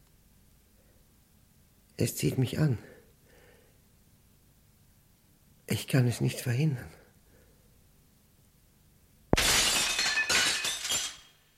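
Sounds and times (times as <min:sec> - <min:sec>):
speech: 0:02.0 - 0:03.0, 0:05.9 - 0:07.0
window pane struck with bare fists shattering: 0:09.4 - 0:11.4
glass shards tinkling and clattering down: 0:09.4 - 0:11.5.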